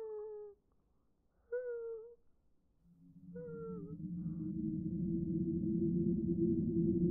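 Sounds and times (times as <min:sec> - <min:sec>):
faint low suffering whimpers behind a door: 0:01.5 - 0:02.2, 0:03.4 - 0:04.5
steady low rushing noise: 0:03.0 - 0:07.0.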